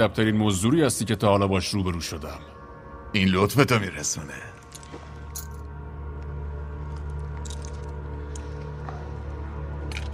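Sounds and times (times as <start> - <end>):
speech: 0.0 - 4.6
steady low hum: 1.6 - 10.1
keys jingling and clinking: 4.6 - 5.7, 7.0 - 8.4.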